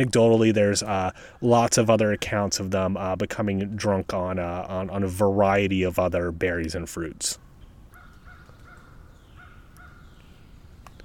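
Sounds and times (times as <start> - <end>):
speech: 0.0 - 7.5
rumbling outdoor background: 0.0 - 11.0
crows cawing: 7.9 - 10.2.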